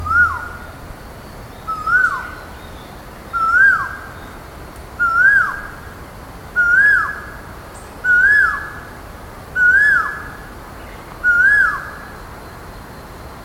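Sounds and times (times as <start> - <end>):
grosbeak call with clear whistled note rising then dropping: 0.0 - 0.7, 1.7 - 2.5, 3.4 - 4.0, 5.0 - 5.7, 6.6 - 7.2, 8.1 - 8.7, 9.6 - 10.3, 11.2 - 12.0.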